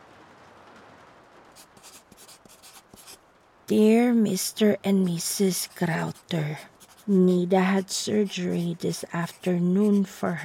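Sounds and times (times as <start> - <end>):
soft hiss: 0.0 - 10.4
pen hastily scratching on paper: 1.6 - 3.2, 3.8 - 10.4
speech: 3.7 - 10.4.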